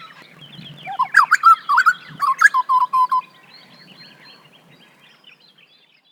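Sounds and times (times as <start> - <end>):
grey butcherbird giving mellow whistles, warbled and piping notes: 0.9 - 3.3.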